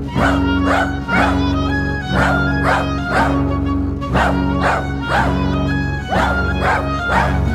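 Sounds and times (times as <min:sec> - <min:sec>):
dogs barking an alarm: 0:00.2 - 0:01.3, 0:02.1 - 0:05.5, 0:06.1 - 0:07.4
dogs yelping: 0:00.2 - 0:01.3, 0:02.1 - 0:07.4.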